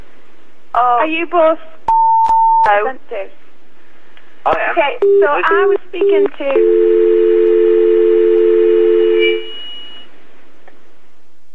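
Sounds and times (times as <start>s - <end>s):
speech: 0.8s - 1.8s, 2.6s - 3.4s, 4.4s - 6.9s
steady electronic beep from an automated telephone transfer system: 5.0s - 10.1s.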